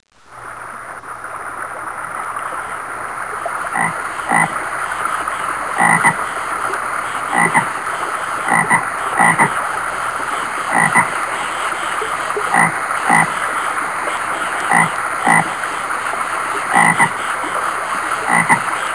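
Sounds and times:
steady high hiss: 0.1s - 18.9s
American bullfrog croaking: 3.7s - 4.6s, 5.7s - 6.3s, 7.3s - 7.8s, 8.4s - 9.6s, 10.7s - 11.2s, 12.4s - 13.4s, 14.6s - 15.6s, 16.7s - 17.3s, 18.2s - 18.7s.

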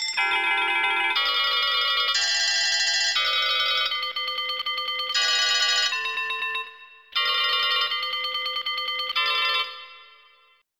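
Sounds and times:
telephone ringing: 0.2s - 10.0s.

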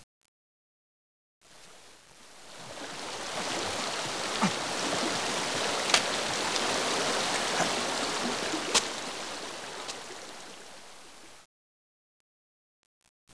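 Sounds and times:
tide: 1.5s - 11.5s.

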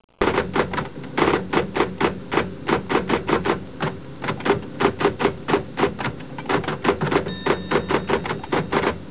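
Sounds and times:
typing: 0.2s - 9.0s.

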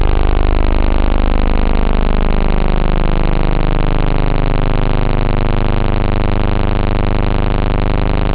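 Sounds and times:
synth bass: 0.0s - 8.3s.

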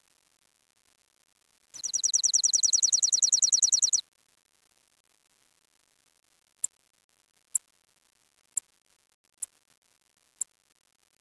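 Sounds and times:
bird giving sharp high downward-sliding chips: 1.8s - 4.0s.

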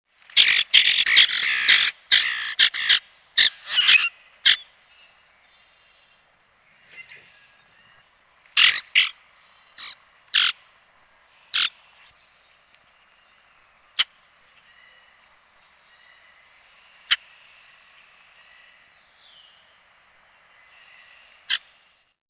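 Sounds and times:
common grackle harsh clipped chack calls in North America: 0.3s - 4.7s, 8.6s - 9.2s, 9.8s - 10.6s, 11.5s - 11.8s.

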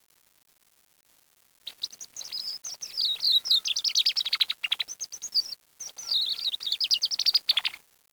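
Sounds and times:
bird chirping in rapid high twittering bursts: 1.7s - 7.8s.

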